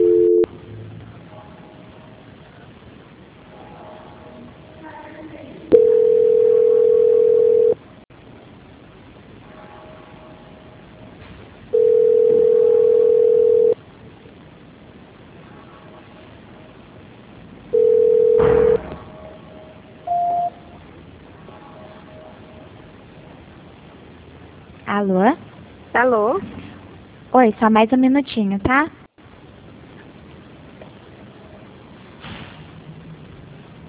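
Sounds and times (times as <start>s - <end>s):
telephone line tone during a call transfer: 0.0s - 0.5s, 5.7s - 7.8s, 11.8s - 13.8s, 17.8s - 18.8s, 20.1s - 20.6s
speech: 25.0s - 25.4s, 27.4s - 29.0s.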